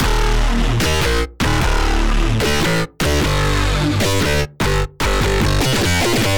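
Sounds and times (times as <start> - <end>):
dubstep music: 0.0 - 6.3.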